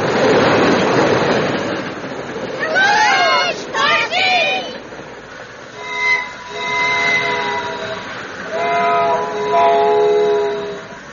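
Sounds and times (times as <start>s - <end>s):
train speeding through a town: 0.0s - 11.1s
train whistle: 5.7s - 11.1s.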